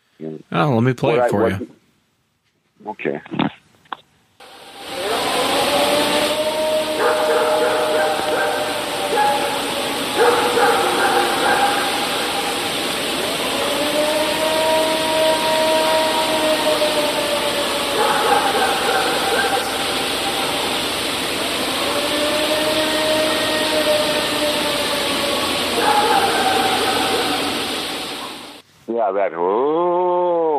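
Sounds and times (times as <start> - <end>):
constant loud hiss: 0.0 - 30.5
speech: 0.2 - 1.8, 2.8 - 3.6, 29.1 - 30.4
eerie howl: 4.5 - 28.6.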